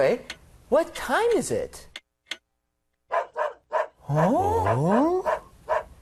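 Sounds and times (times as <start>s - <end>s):
speech: 0.0s - 1.9s, 4.1s - 5.3s
dog barking: 3.1s - 4.0s, 4.6s - 5.9s
dog howling or whining: 4.1s - 5.9s.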